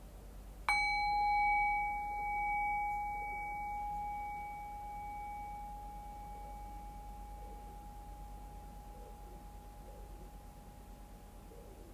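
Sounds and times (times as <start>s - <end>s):
single bell struck and ringing: 0.7s - 9.8s.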